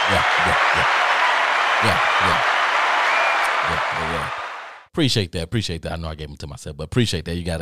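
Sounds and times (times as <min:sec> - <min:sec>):
loud hand clapping: 0:00.0 - 0:04.8
speech: 0:00.1 - 0:01.0, 0:01.8 - 0:02.6, 0:05.0 - 0:07.6.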